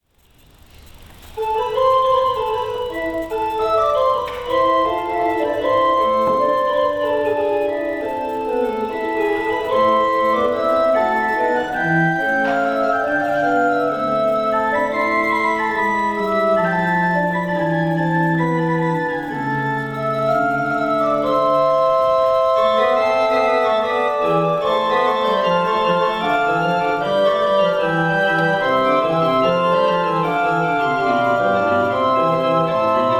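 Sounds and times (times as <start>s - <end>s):
organ playing a basse de tierce: 0.0s - 33.1s.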